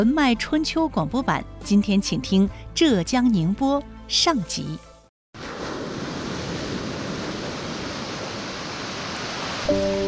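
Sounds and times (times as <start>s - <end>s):
speech: 0.0s - 4.9s
East China Sea tide surging into hand-worked salt pans off Xiangshan Ningbo: 5.4s - 10.0s.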